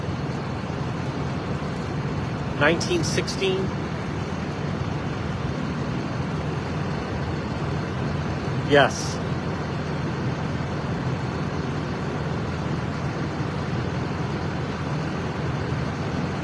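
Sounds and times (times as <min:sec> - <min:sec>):
low engine rumble of a large public transit bus: 0:00.0 - 0:16.4
traffic noise: 0:00.0 - 0:16.4
speech: 0:02.6 - 0:03.8, 0:08.7 - 0:09.2
voices: 0:02.6 - 0:03.8, 0:08.7 - 0:09.2.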